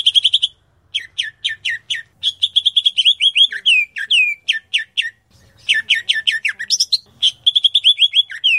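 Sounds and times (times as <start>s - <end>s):
grey-cheeked bulbul chattering song: 0.0s - 8.5s.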